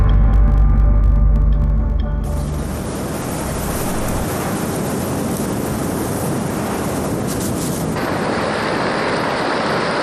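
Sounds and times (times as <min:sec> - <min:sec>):
low droning hum: 0:00.0 - 0:05.6
rushing river water: 0:02.2 - 0:10.0.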